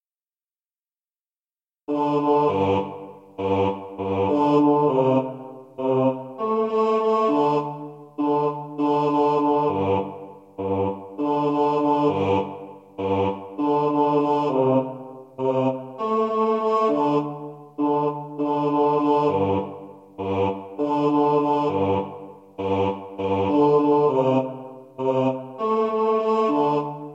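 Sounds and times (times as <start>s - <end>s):
choir singing karaoke bass: 1.9s - 27.1s.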